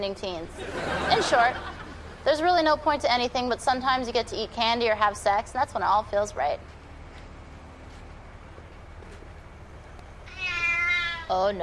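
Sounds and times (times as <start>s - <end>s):
speech: 0.0s - 6.8s, 11.3s - 11.6s
laughter: 0.5s - 2.2s
cat meowing: 10.2s - 11.4s.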